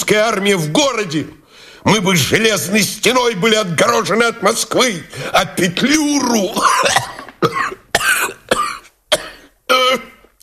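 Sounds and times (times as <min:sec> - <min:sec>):
speech: 0:00.0 - 0:07.8
man coughing violently: 0:06.4 - 0:10.4.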